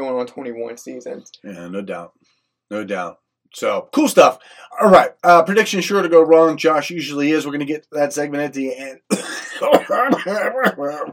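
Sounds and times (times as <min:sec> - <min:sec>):
speech: 0:00.2 - 0:11.1
coughing: 0:09.0 - 0:11.1.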